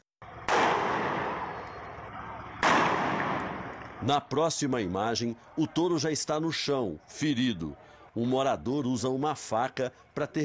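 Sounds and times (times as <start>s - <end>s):
police gunshots fired outdoors at a captured bull: 0.4s - 4.0s
speech: 4.0s - 10.4s.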